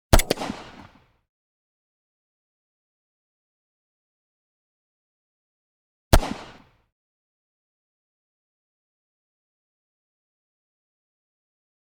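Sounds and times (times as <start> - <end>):
close 9mm gunshot blast: 0.1 - 0.9, 6.2 - 6.6.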